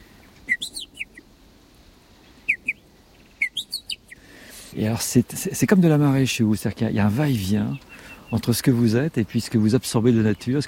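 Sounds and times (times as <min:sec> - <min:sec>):
blackbird chicks calling to be fed: 0:00.0 - 0:01.3, 0:02.2 - 0:04.7, 0:07.4 - 0:08.7
speech: 0:04.8 - 0:10.6.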